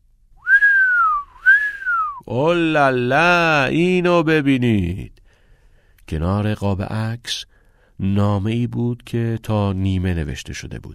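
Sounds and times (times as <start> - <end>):
person whistling two long sliding notes: 0.4 - 2.3
speech: 2.3 - 5.2, 6.1 - 10.9.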